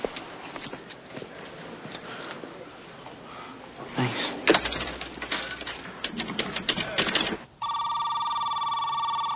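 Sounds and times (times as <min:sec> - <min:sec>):
busy clattering: 0:04.4 - 0:07.5
electronic telephone ring: 0:07.6 - 0:09.3.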